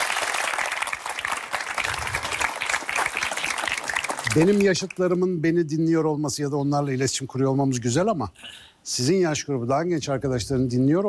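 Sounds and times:
crowd applauding: 0.0 - 5.0
speech: 4.4 - 11.0.

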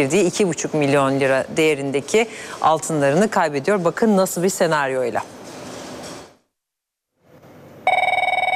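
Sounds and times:
speech: 0.0 - 5.4
loud telephone bell ringing: 7.9 - 8.5.

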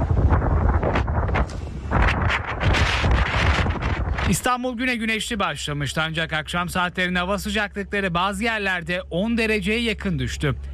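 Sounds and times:
strong wind from a cold wave over Istanbul buffeting the microphone: 0.0 - 4.6
speech: 4.3 - 10.7.

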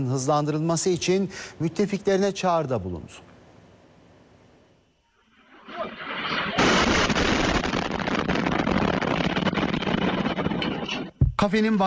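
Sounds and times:
speech: 0.0 - 3.3, 11.4 - 11.8
sharp crackling bursts from an air strike: 5.2 - 11.2
explosions from an air strike: 5.5 - 11.1.

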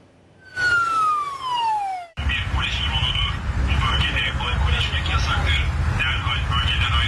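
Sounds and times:
steady outdoor noise by the old city walls: 0.0 - 7.0
police drone loudspeaker siren whoop: 0.4 - 2.2.

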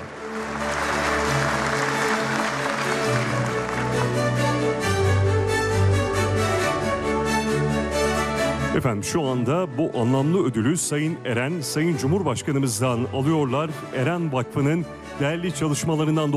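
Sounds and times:
audience applause at an award ceremony: 0.0 - 5.2
music playing: 0.0 - 16.3
speech: 8.8 - 16.3.

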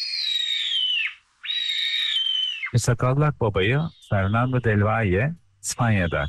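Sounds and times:
Eurasian sparrowhawk calling with shrill whistling cries in Konya: 0.0 - 2.8, 3.8 - 4.8, 5.8 - 6.2
speech: 2.7 - 6.2.

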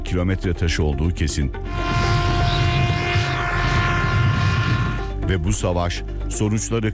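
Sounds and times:
speech: 0.1 - 2.1, 5.3 - 6.9
drone propeller buzzing overhead: 1.7 - 5.3.

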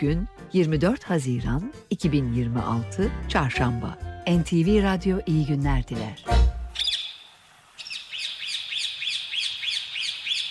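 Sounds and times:
speech: 0.0 - 6.4
parrot calling: 6.7 - 7.2, 7.8 - 10.4.

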